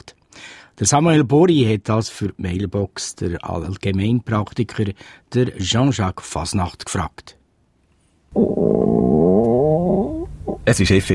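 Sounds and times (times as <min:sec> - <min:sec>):
speech: 0:00.8 - 0:07.4, 0:08.3 - 0:09.1, 0:10.6 - 0:11.1
hungry stomach growling: 0:08.3 - 0:10.7.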